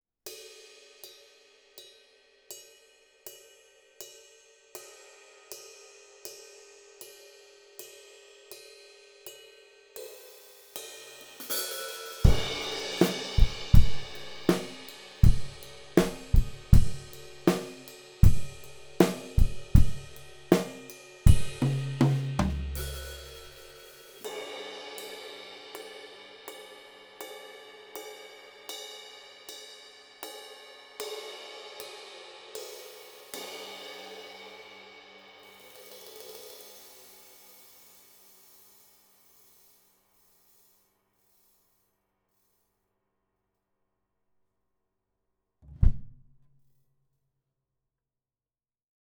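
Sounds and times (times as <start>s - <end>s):
drum music: 12.2s - 23.8s.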